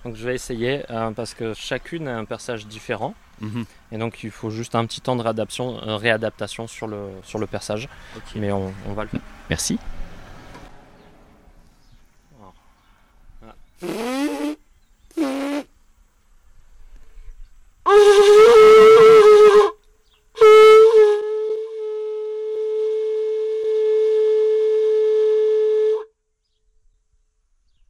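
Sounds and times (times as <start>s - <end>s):
speech: 0.0s - 10.0s, 13.8s - 14.3s
ivory olifant horn being blown: 13.8s - 15.7s, 17.9s - 19.8s, 20.4s - 26.1s.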